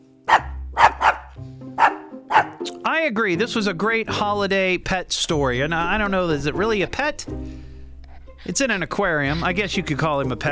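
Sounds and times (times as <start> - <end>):
dog barking: 0.3 - 2.6
speech: 2.6 - 7.6, 8.4 - 10.5.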